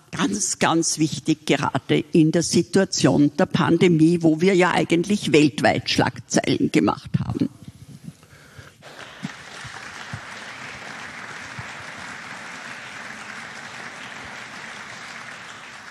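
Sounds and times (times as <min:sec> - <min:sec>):
speech: 0:00.2 - 0:07.2
audience applause: 0:08.8 - 0:15.8.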